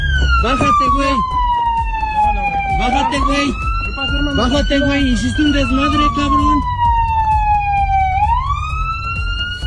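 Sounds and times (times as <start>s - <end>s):
loud ambulance siren wailing: 0.0s - 9.6s
low rumble of traffic: 0.0s - 9.6s
speech: 0.4s - 1.4s, 2.3s - 6.7s.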